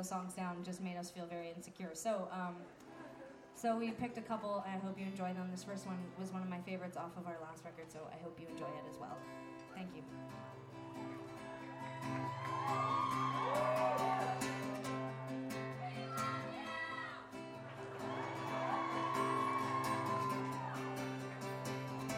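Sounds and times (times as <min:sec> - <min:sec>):
speech: 0:00.0 - 0:11.1, 0:12.1 - 0:13.3
concert audience yelling and whooping: 0:11.0 - 0:15.0, 0:15.9 - 0:21.6.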